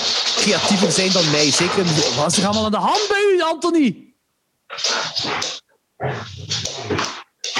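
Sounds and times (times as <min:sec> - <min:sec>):
dogs fighting with harsh snarls and rough growls: 0:00.0 - 0:02.7, 0:04.7 - 0:07.5
speech: 0:00.4 - 0:04.1, 0:04.7 - 0:07.0.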